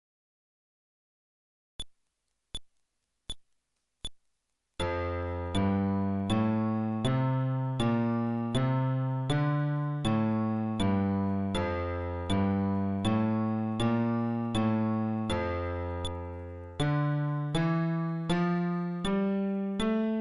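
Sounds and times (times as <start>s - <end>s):
fretless bass playing a scale: 4.8s - 20.1s.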